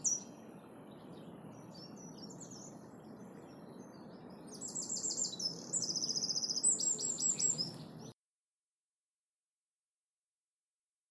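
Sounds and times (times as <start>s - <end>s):
Eurasian wren song, Troglodytes troglodytes: 0.0s - 8.2s.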